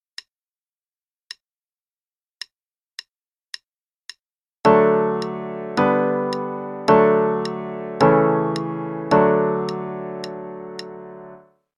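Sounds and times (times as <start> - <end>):
D Major chord progression: 4.7 - 11.4.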